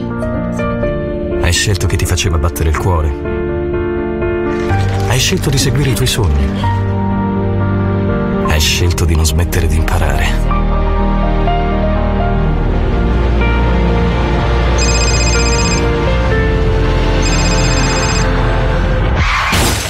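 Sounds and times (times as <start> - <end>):
loud dense musical bed: 0.0 - 19.8
speech: 1.5 - 3.4, 4.6 - 6.8, 8.6 - 10.7
phone ringing: 14.8 - 16.0, 17.2 - 18.4.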